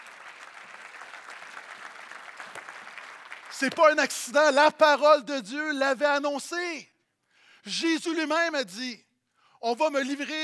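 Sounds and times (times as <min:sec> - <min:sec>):
church congregation clapping at an Easter service: 0:00.0 - 0:04.8
speech: 0:03.6 - 0:06.9, 0:07.6 - 0:09.0, 0:09.6 - 0:10.4.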